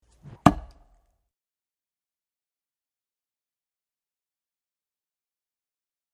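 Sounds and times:
axe single chop into wood: 0.2s - 0.9s.

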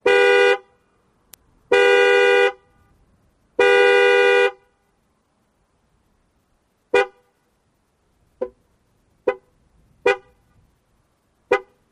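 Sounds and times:
mid-size car horn honks: 0.0s - 0.8s, 1.7s - 3.0s, 3.6s - 4.9s, 6.9s - 7.4s, 9.2s - 10.5s, 11.5s - 11.8s.

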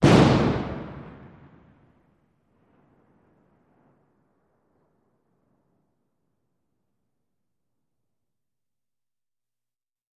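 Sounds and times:
1x4 Oz concussion blast: 0.0s - 1.6s.

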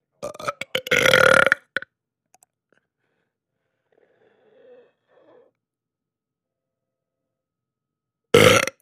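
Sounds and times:
person giving a double throat belch: 0.2s - 1.8s, 8.4s - 8.8s.

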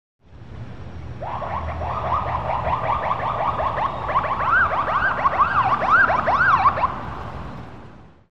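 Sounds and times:
short whooper siren: 1.2s - 6.9s.

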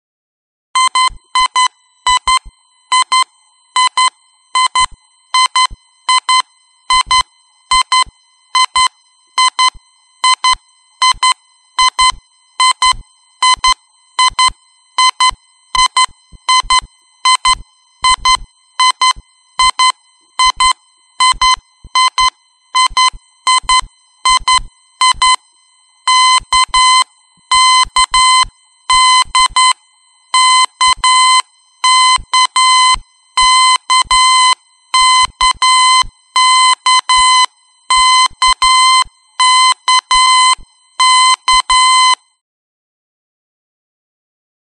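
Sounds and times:
electronic alarm beeps: 0.8s - 25.5s, 26.1s - 42.4s.

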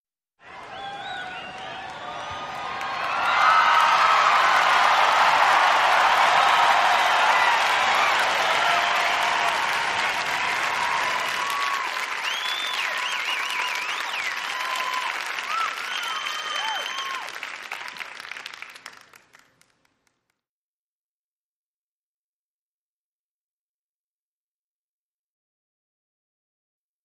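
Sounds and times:
huge football crowd in a sports arena: 0.4s - 19.5s.

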